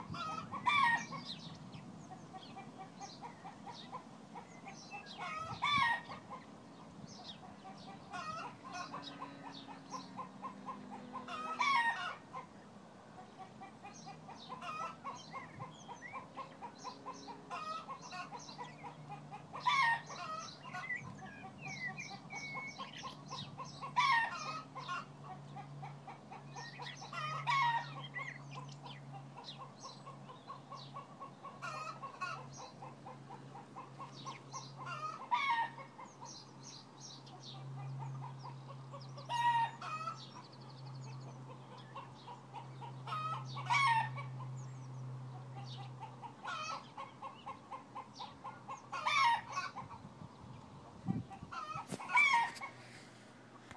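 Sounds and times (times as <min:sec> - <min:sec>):
birds tweeting: 0:00.0 - 0:53.7
chickens laying: 0:00.0 - 0:53.7.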